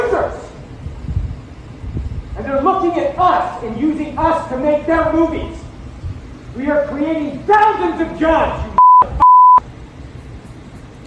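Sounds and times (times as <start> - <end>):
speech: 2.6 - 5.6, 6.6 - 9.2
loud mid-pitch electronic beeps: 8.8 - 9.6.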